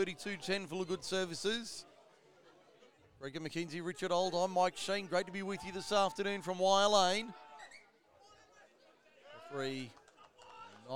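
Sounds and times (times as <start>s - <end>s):
speech: 0.0s - 1.9s, 3.2s - 7.4s, 9.5s - 10.0s
murmur of many overlapping voices: 0.0s - 10.9s.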